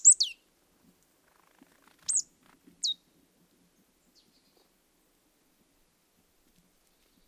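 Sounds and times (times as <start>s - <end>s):
marsh tit Poecile palustris sharp high calls: 0.0s - 0.4s, 1.4s - 3.0s.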